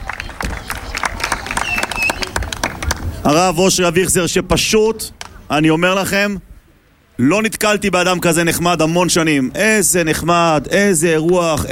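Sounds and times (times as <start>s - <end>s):
crowd applauding at an event in Beersheba Israel: 0.0s - 3.2s
murmuring voices: 0.0s - 3.6s
faint whistles: 1.6s - 2.3s
speech: 3.2s - 6.5s, 7.2s - 11.7s.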